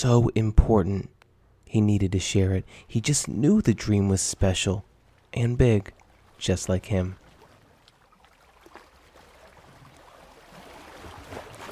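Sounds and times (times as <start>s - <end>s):
speech: 0.0s - 7.2s
underwater whoosh of rushing water current: 5.1s - 11.7s.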